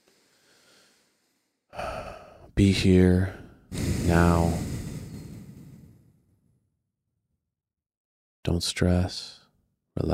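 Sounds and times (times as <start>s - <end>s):
slow deep breath drawn in: 0.0s - 2.5s, 3.6s - 6.3s
speech: 2.6s - 4.6s, 8.4s - 9.4s, 10.0s - 10.1s.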